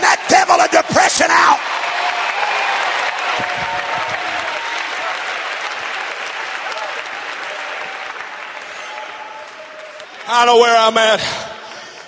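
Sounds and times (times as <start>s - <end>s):
large crowd clapping hands: 0.0s - 12.0s
speech: 10.3s - 11.4s.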